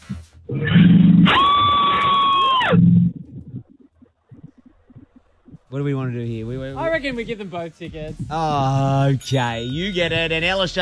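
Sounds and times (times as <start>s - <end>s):
speech: 0.5s - 1.6s, 5.8s - 10.7s
woman letting out a long piercing horror-movie scream: 1.3s - 2.8s.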